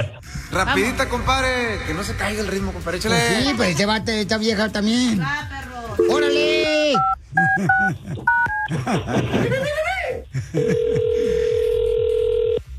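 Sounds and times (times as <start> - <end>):
speech: 0.0 - 11.4
telephone number dialed on a touch-tone keypad: 6.0 - 8.7
laughter: 7.3 - 11.5
steady telephone tone: 10.7 - 12.6.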